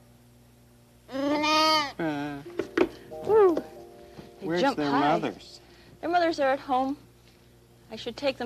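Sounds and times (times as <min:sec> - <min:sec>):
lambs bleating: 0:01.1 - 0:02.0
speech: 0:04.5 - 0:07.0, 0:07.9 - 0:08.4.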